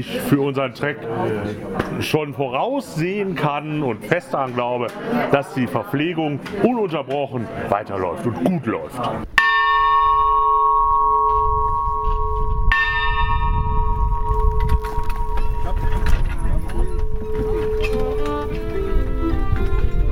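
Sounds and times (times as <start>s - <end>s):
speech: 0.0s - 9.5s
busy noise: 0.0s - 20.0s
bell strikes signalling departure: 9.4s - 18.1s.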